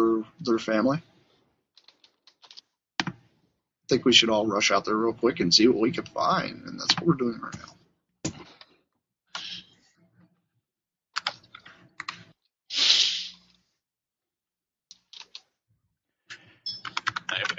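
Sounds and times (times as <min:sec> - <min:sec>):
speech: 0:00.5 - 0:01.1, 0:03.9 - 0:07.8
typing on several computer keyboards: 0:01.8 - 0:03.2, 0:11.2 - 0:12.3, 0:16.7 - 0:17.5.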